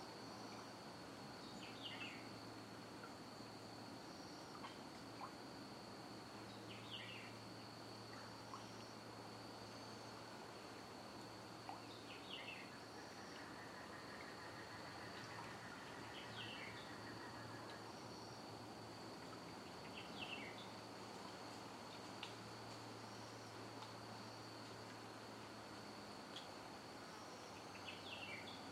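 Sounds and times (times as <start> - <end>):
steady high insect whine at a wildlife refuge: 0.0 - 28.7.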